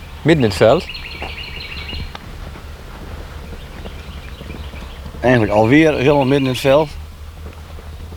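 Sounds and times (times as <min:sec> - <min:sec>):
bird singing in the middle of a field: 0:00.0 - 0:08.1
wind-like noise: 0:00.0 - 0:08.1
speech: 0:00.2 - 0:01.3, 0:05.2 - 0:07.0
faint rustling: 0:00.6 - 0:08.1
steady low rumble: 0:00.8 - 0:08.1
footsteps: 0:01.0 - 0:08.1.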